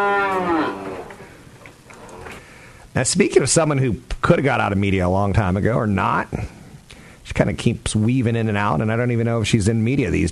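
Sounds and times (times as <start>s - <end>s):
cow mooing: 0.0s - 1.3s
speech: 3.0s - 6.6s, 7.4s - 10.3s.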